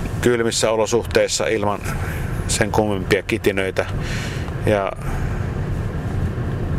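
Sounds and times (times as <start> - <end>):
road rumble from inside a moving car: 0.0 - 6.7
speech: 0.2 - 5.3.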